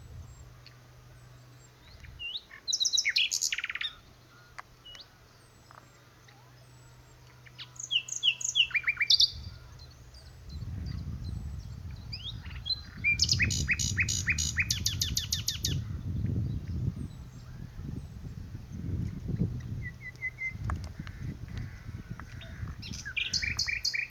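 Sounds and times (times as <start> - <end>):
common nightingale singing: 0.1 - 18.1, 22.4 - 24.0
low rumble: 9.2 - 23.6.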